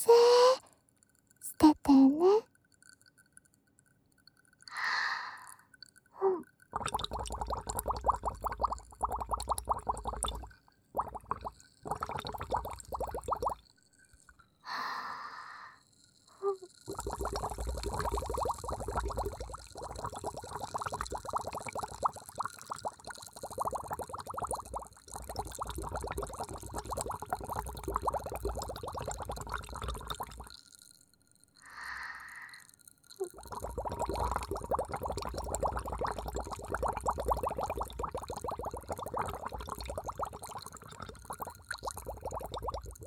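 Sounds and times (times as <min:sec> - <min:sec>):
soft breathy sounds: 0:00.0 - 0:00.8, 0:04.7 - 0:06.5, 0:14.6 - 0:16.8, 0:31.6 - 0:33.4
liquid bubbling with tiny pops and gurgles: 0:00.0 - 0:15.4, 0:16.0 - 0:43.0.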